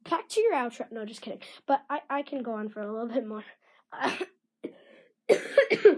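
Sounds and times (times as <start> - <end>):
speech: 0.5 - 4.3
person coughing: 4.0 - 5.9.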